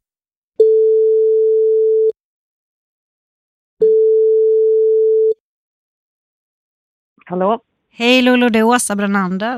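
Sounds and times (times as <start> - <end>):
telephone ringback tone while calling someone: 0.6 - 2.2, 3.8 - 5.4
speech: 7.3 - 9.5.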